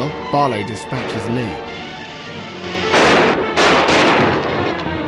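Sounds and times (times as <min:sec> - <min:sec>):
speech: 0:00.1 - 0:01.8
gunfire bursts during a shootout around a train: 0:02.8 - 0:04.9.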